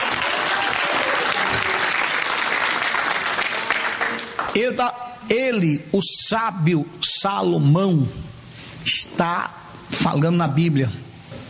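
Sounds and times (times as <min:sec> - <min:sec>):
audience applause: 0:00.0 - 0:04.7
speech: 0:04.6 - 0:11.0.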